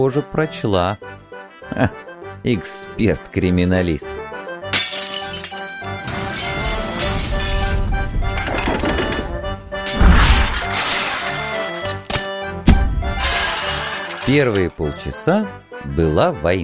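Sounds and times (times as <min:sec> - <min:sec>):
speech: 0:00.0 - 0:04.2, 0:14.3 - 0:16.6
dishes shattering: 0:04.7 - 0:08.9, 0:09.9 - 0:12.3, 0:13.2 - 0:14.8
heavy samovar crashing down: 0:06.0 - 0:11.8, 0:12.7 - 0:14.7.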